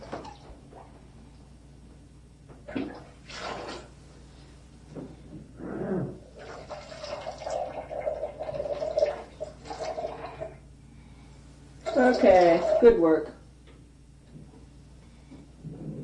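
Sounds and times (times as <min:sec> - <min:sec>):
water poured from a pitcher during a child's bath: 0:02.8 - 0:03.9, 0:06.4 - 0:10.6
speech: 0:12.1 - 0:13.4.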